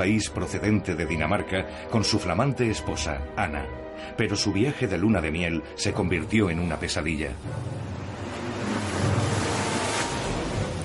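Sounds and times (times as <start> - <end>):
speech: 0.0 - 8.0
stormy North Sea surf crashing: 7.8 - 10.8.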